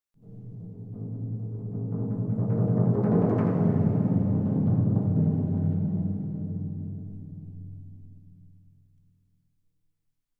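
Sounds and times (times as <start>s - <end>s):
timpani struck with mallets: 0.3s - 7.0s.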